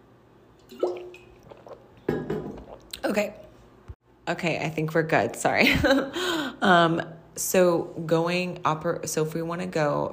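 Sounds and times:
wet gulping and swallowing: 0:00.7 - 0:03.1
person sipping water: 0:00.7 - 0:03.4
speech: 0:03.1 - 0:03.4, 0:04.3 - 0:10.1.

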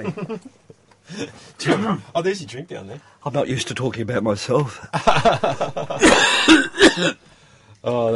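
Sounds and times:
laughter: 0:00.0 - 0:00.5, 0:04.9 - 0:06.6
speech: 0:00.0 - 0:08.1
person coughing: 0:06.0 - 0:07.2.

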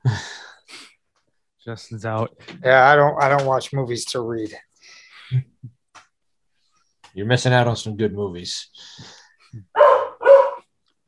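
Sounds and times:
speech: 0:01.6 - 0:04.7, 0:05.3 - 0:05.5, 0:07.2 - 0:09.9
dog barking: 0:09.8 - 0:10.6.

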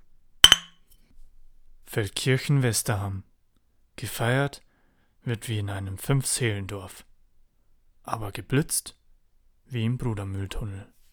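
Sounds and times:
glasses clinking in a toast: 0:00.4 - 0:00.7
speech: 0:02.0 - 0:03.3, 0:04.0 - 0:04.6, 0:05.2 - 0:07.1, 0:08.0 - 0:09.0, 0:09.7 - 0:11.0.

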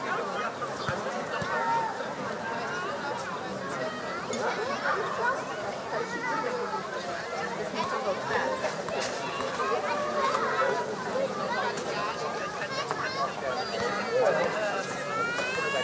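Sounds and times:
children playing and chattering on a summer-evening playground in Berlin: 0:00.0 - 0:15.8
children shouting and squealing on a playground: 0:03.7 - 0:15.8.

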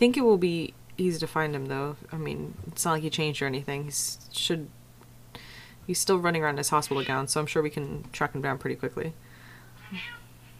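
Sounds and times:
speech: 0:00.0 - 0:04.8, 0:05.9 - 0:09.3, 0:09.9 - 0:10.2
low steady hum: 0:00.0 - 0:10.5
agitated cat meowing: 0:06.9 - 0:07.2, 0:09.8 - 0:10.3.

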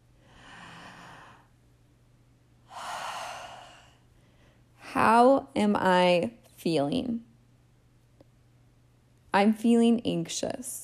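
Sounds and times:
deep breath: 0:00.1 - 0:01.6, 0:02.7 - 0:04.7
speech: 0:05.0 - 0:07.3, 0:09.3 - 0:10.8.

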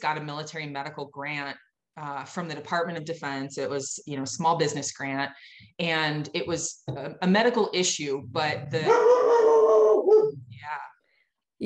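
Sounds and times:
speech: 0:00.0 - 0:09.5
dog howling: 0:08.8 - 0:10.4.

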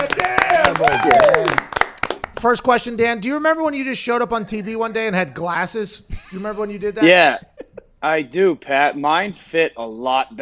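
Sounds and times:
voices calling out and cheering: 0:00.0 - 0:01.6
several hosts clapping hands to welcome a guest: 0:00.0 - 0:03.0
speech: 0:00.7 - 0:01.7, 0:02.4 - 0:10.4.

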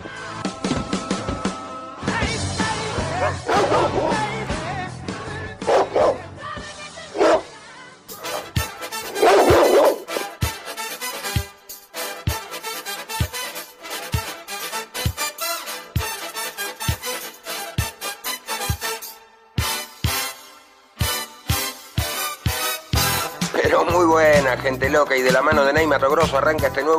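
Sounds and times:
music: 0:00.0 - 0:26.9
dog barking: 0:03.1 - 0:04.4, 0:05.6 - 0:06.3, 0:07.1 - 0:07.5, 0:08.2 - 0:10.3
speech: 0:03.2 - 0:04.0, 0:24.8 - 0:26.9.

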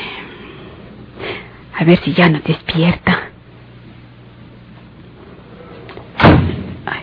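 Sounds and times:
speech: 0:01.8 - 0:03.2
heavy door slamming shut: 0:06.2 - 0:06.9.

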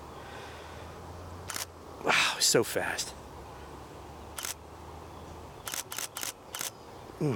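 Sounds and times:
faint outdoor ambience: 0:00.0 - 0:07.3
mechanical camera shutter clicks at a raised shutter speed: 0:01.5 - 0:01.7, 0:04.4 - 0:04.6, 0:05.6 - 0:06.7
speech: 0:02.5 - 0:03.2.

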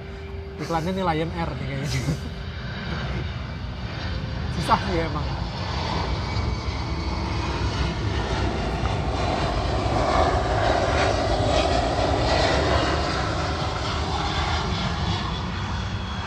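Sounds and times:
airplane engine roaring overhead: 0:00.0 - 0:16.2
speech: 0:00.6 - 0:03.0, 0:04.6 - 0:05.4
laughter: 0:01.8 - 0:03.4.

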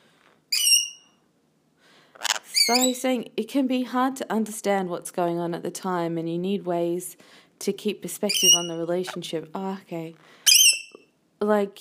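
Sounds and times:
single bright high bird chirp: 0:00.5 - 0:01.1, 0:02.2 - 0:03.0, 0:08.3 - 0:08.8, 0:10.5 - 0:11.0
speech: 0:02.7 - 0:10.4, 0:11.4 - 0:11.8.

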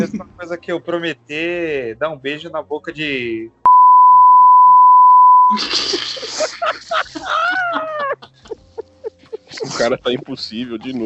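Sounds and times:
excited voices talking and laughing over each other: 0:00.0 - 0:02.0, 0:05.5 - 0:11.0
speech: 0:00.0 - 0:03.6, 0:05.5 - 0:08.6, 0:09.5 - 0:11.0
steady loud censor bleep: 0:03.7 - 0:05.5.

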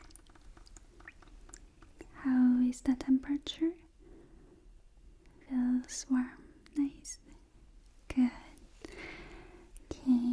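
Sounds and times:
water trickling and dripping: 0:00.0 - 0:02.2
speech: 0:02.2 - 0:03.8, 0:05.5 - 0:07.2, 0:08.2 - 0:08.4.

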